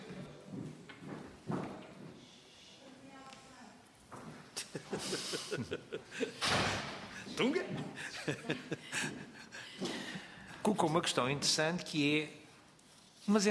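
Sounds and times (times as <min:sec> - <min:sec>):
laughter: 0:04.6 - 0:07.2, 0:07.8 - 0:10.1
speech: 0:05.0 - 0:08.8, 0:10.9 - 0:12.4, 0:13.3 - 0:13.4
door pushed shut with soft knocks and firmer thud: 0:06.4 - 0:07.0.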